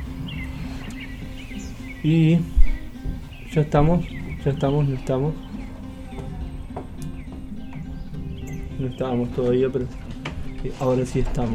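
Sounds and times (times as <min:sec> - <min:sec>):
small birds chirping: 0:00.0 - 0:11.5
speech: 0:02.0 - 0:02.6, 0:03.6 - 0:05.5, 0:08.8 - 0:10.0, 0:10.6 - 0:11.5.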